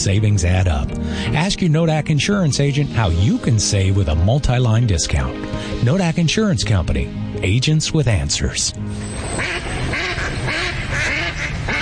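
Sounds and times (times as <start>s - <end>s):
speech: 0.0s - 10.1s
ducks quacking: 9.3s - 11.8s.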